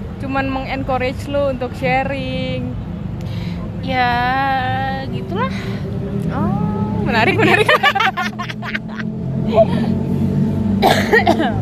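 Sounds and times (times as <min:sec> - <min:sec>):
speech: 0:00.2 - 0:02.9, 0:03.8 - 0:10.2, 0:10.8 - 0:11.6
laughter: 0:07.1 - 0:09.9
person coughing harshly: 0:10.8 - 0:11.6.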